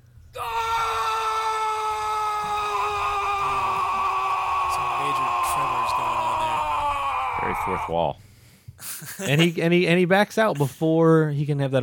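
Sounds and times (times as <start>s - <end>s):
man screaming into a camera: 0.4s - 8.1s
speech: 7.4s - 11.8s.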